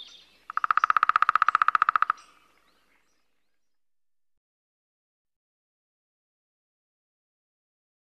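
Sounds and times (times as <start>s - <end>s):
lesser spotted woodpecker drumming: 0.5s - 2.4s.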